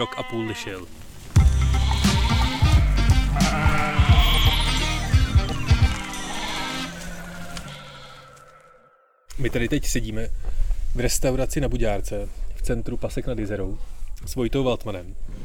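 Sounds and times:
speech: 0:00.0 - 0:01.0, 0:09.4 - 0:15.4
sheep bleating: 0:00.0 - 0:08.8.

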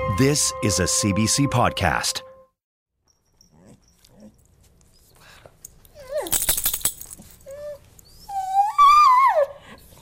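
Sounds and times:
speech: 0:00.2 - 0:02.3
dog whining: 0:03.1 - 0:10.0
jingling rattle: 0:06.2 - 0:07.4.

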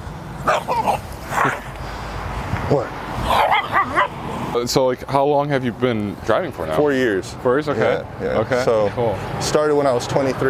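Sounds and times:
dog barking: 0:00.5 - 0:01.7, 0:03.3 - 0:04.2
speech: 0:02.7 - 0:03.0, 0:04.6 - 0:10.4.

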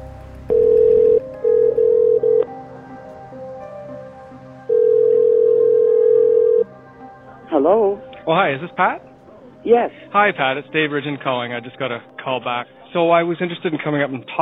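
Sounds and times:
telephone ringback tone on an outgoing phone call: 0:00.5 - 0:02.5, 0:04.7 - 0:06.7
speech: 0:08.3 - 0:14.4.

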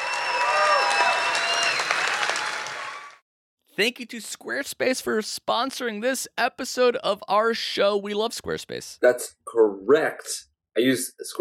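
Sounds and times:
audience clapping: 0:00.0 - 0:03.2
faint whistles and cheers: 0:00.0 - 0:03.2
speech: 0:03.8 - 0:11.3.

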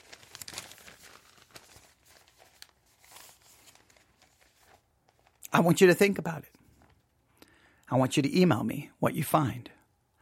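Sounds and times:
paper rustling and crinkling as it is folded shut: 0:00.0 - 0:05.5, 0:06.6 - 0:07.2
speech: 0:05.5 - 0:06.6, 0:07.9 - 0:09.8.

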